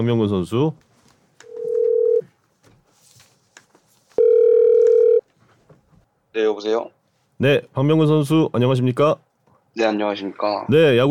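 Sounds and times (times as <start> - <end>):
speech: 0.0 - 0.9, 6.4 - 9.2, 9.8 - 11.0
telephone ringback tone while placing a call: 1.5 - 2.2, 4.2 - 5.2.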